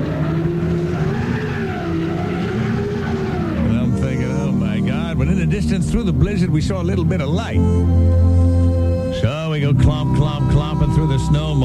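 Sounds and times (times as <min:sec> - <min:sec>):
tires squealing and spinning in deep snow: 0:00.0 - 0:07.4
car engine gunned hard stuck in deep snow in a blizzard: 0:00.0 - 0:11.6
speech: 0:05.4 - 0:11.6.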